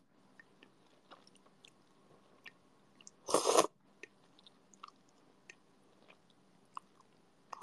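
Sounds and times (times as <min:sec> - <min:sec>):
ramen noodle slurping: 0:03.3 - 0:03.7.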